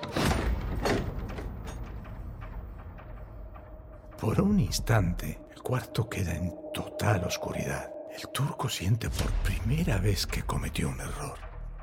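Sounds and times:
door swinging shut with a creaking rattle of the latch: 0:00.0 - 0:02.6
speech: 0:04.2 - 0:11.8.

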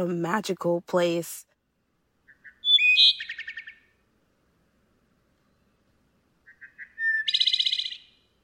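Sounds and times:
speech: 0:00.0 - 0:01.5
wood thrush singing: 0:02.2 - 0:03.9, 0:05.4 - 0:08.4.

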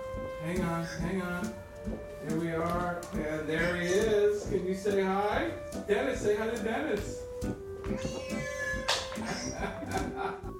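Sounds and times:
soft rustling: 0:00.0 - 0:10.2
speech: 0:00.4 - 0:07.2
half-asleep male cat meowing: 0:07.9 - 0:09.6
laughter: 0:08.3 - 0:10.5.

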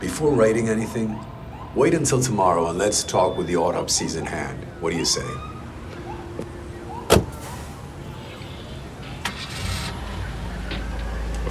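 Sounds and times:
speech: 0:00.2 - 0:05.6
car engine rumble as the vehicle pulls away: 0:05.5 - 0:11.4
car door thudding shut: 0:07.1 - 0:07.7.

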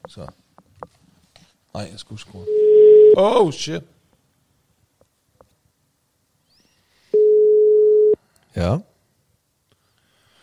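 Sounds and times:
speech: 0:00.1 - 0:00.4, 0:01.8 - 0:04.0, 0:08.6 - 0:08.9
single-pitched phone ringing tone: 0:02.5 - 0:03.2, 0:07.2 - 0:08.2.

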